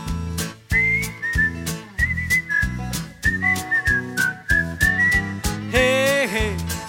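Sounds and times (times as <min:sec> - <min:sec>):
upbeat band accompaniment with rhythmic chords and drums: 0:00.0 - 0:06.8
person whistling a bright wandering melody: 0:00.7 - 0:06.1.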